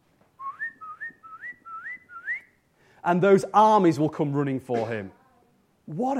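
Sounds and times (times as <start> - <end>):
person whistling short upward-sliding notes: 0.4 - 2.6
speech: 3.0 - 5.2, 5.9 - 6.1.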